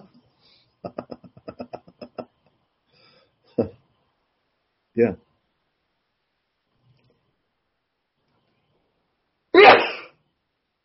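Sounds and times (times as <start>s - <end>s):
speech: 3.6s - 3.8s, 5.0s - 5.2s
person sneezing: 9.6s - 10.2s.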